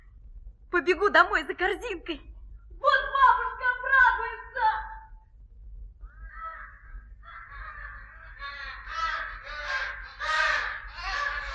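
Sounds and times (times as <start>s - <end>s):
low rumble: 0.0s - 11.5s
speech: 0.8s - 3.0s
flock of wild ducks, geese and swans calling: 7.3s - 11.5s.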